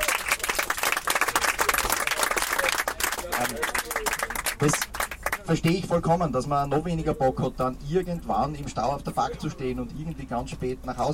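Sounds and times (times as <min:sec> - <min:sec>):
crowd applause for a bus driver: 0:00.0 - 0:05.8
speech: 0:03.4 - 0:11.1.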